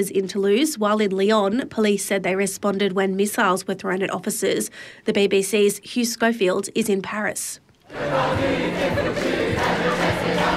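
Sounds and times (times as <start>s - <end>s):
speech: 0.0s - 10.5s
crowd of students chanting slogans at a protest: 7.9s - 10.5s.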